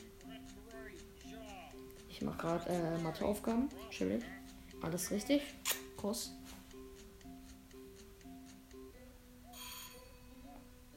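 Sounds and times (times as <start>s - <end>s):
speech: 2.2s - 6.4s
electronic ringtone beeping: 9.5s - 10.6s.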